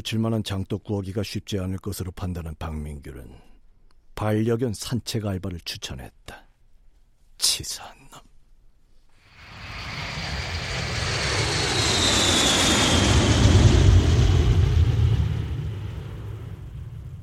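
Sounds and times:
speech: 0:00.0 - 0:03.5, 0:04.2 - 0:06.4, 0:07.4 - 0:08.3
airplane engine roaring in flight: 0:09.4 - 0:17.2.

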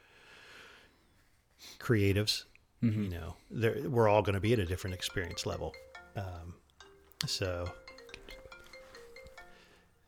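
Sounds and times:
speech: 0:01.8 - 0:06.6, 0:07.2 - 0:07.9
phone ringtone of electronic notes: 0:04.8 - 0:10.0.

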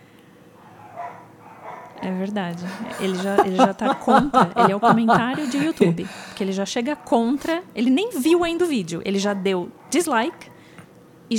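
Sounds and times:
low hum: 0:00.0 - 0:11.3
dog barking: 0:00.6 - 0:02.2, 0:09.3 - 0:10.8
speech: 0:02.0 - 0:10.5
laughter: 0:02.5 - 0:06.3.

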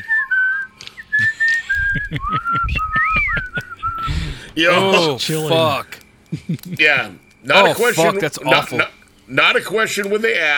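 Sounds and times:
person whistling a wavering tune: 0:00.0 - 0:04.4
laughter: 0:01.2 - 0:08.4
speech: 0:02.1 - 0:10.5.

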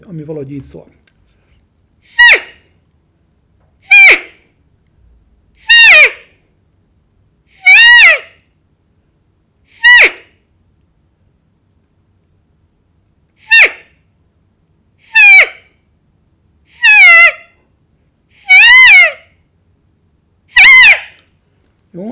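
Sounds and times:
speech: 0:00.1 - 0:01.0
roe deer doe complaint call after being struck by a buck's antlers: 0:02.2 - 0:02.6, 0:03.9 - 0:04.3, 0:07.6 - 0:08.3, 0:09.8 - 0:10.3, 0:13.4 - 0:13.9, 0:16.8 - 0:17.5, 0:18.4 - 0:19.3, 0:20.6 - 0:21.2.

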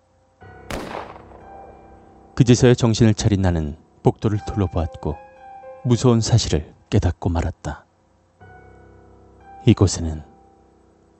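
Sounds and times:
gunshot: 0:00.7 - 0:01.4
speech: 0:02.4 - 0:05.2, 0:05.8 - 0:07.8, 0:09.6 - 0:10.3.

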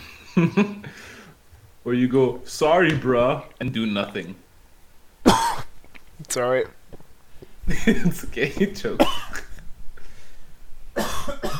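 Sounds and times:
speech: 0:00.4 - 0:01.1, 0:01.8 - 0:04.4, 0:06.2 - 0:06.8, 0:07.7 - 0:09.2
loud harsh coughs: 0:05.3 - 0:05.7, 0:09.0 - 0:09.6, 0:11.0 - 0:11.5.

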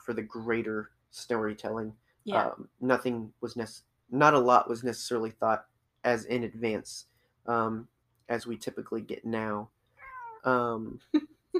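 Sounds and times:
speech: 0:00.1 - 0:09.8, 0:10.4 - 0:11.5
very tiny cat meowing: 0:10.0 - 0:10.6.

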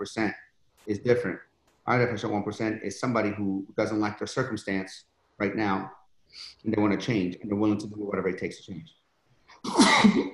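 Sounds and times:
speech: 0:00.0 - 0:09.0, 0:09.6 - 0:10.3
soft intake of breath: 0:06.2 - 0:06.7
sneeze: 0:09.6 - 0:10.3.

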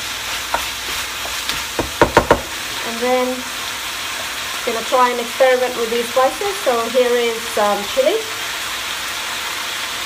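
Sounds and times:
onions browning in butter in a pan: 0:00.0 - 0:10.0
soft stirring scrapes in a pan: 0:00.2 - 0:01.8
speech: 0:03.0 - 0:03.6, 0:04.7 - 0:08.4.

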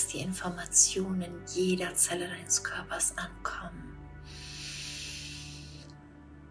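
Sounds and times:
speech: 0:00.1 - 0:04.4
deep breath in during a guided meditation: 0:04.2 - 0:06.0.

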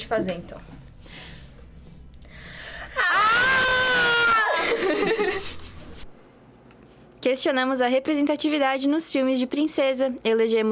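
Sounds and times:
speech: 0:00.1 - 0:01.4, 0:07.2 - 0:10.7
person screaming: 0:03.0 - 0:04.7.

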